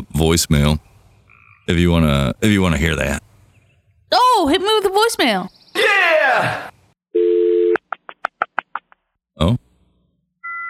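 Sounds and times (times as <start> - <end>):
speech: 0.2 - 0.9, 1.7 - 3.2, 4.1 - 6.7, 9.4 - 9.6
dial-up internet modem dial tone: 7.2 - 7.8.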